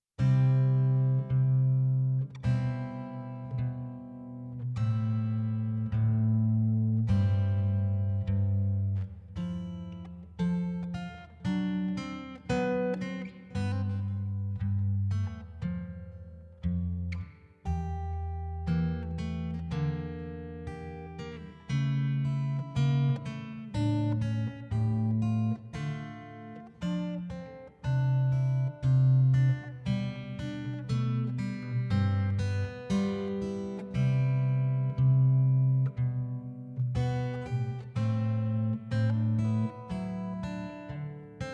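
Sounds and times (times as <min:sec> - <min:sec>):
solo guitar: 0:00.0 - 0:41.5.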